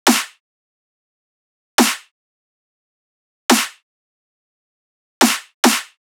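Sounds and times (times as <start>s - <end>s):
riddim drum loop with snare and clap: 0.1s - 0.4s, 1.8s - 2.1s, 3.5s - 3.8s, 5.2s - 6.0s.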